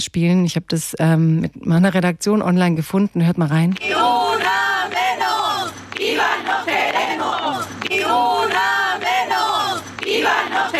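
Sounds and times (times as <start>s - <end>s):
speech: 0.1s - 5.3s
women's voices chanting at a night-time street demonstration against violence toward women: 3.8s - 10.7s.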